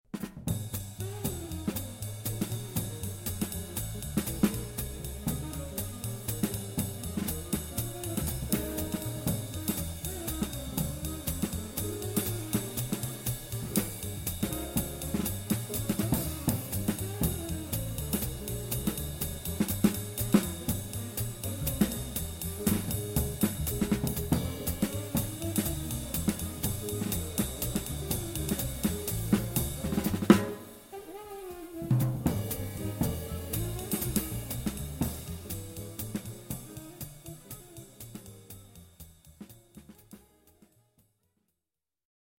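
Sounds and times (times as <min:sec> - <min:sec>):
jazz quartet drum kit through stereo pair overhead microphones: 0:00.0 - 0:41.0.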